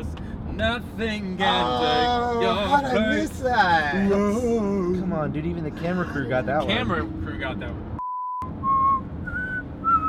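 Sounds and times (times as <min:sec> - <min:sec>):
speech: 0:00.6 - 0:07.9
person whistling a short three-note tune: 0:08.6 - 0:10.0.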